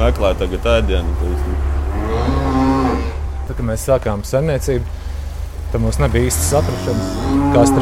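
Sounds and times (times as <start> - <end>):
speech: 0.1 - 1.6, 3.5 - 5.0, 5.7 - 7.7
steady low hum of cattle barn noise: 0.4 - 4.9, 5.9 - 7.7
day-old calf mooing in a cattle barn: 1.5 - 3.4, 6.4 - 7.7.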